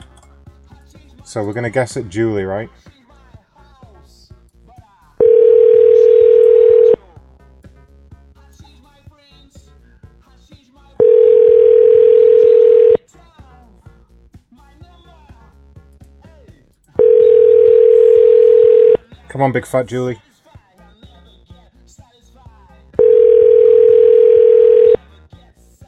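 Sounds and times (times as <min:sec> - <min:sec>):
speech: 0:01.3 - 0:03.0, 0:19.4 - 0:20.3
telephone tone on a call being dialed: 0:05.2 - 0:07.0, 0:11.0 - 0:13.0, 0:17.0 - 0:19.0, 0:23.0 - 0:25.0.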